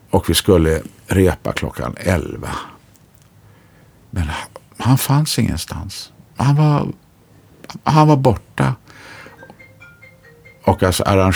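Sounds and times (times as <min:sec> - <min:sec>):
soft hiss: 0:00.0 - 0:11.3
speech: 0:00.1 - 0:02.7, 0:04.1 - 0:07.0, 0:07.7 - 0:09.2, 0:10.6 - 0:11.3
mobile phone morning alarm ringtone with repeating electronic melody: 0:09.1 - 0:11.3.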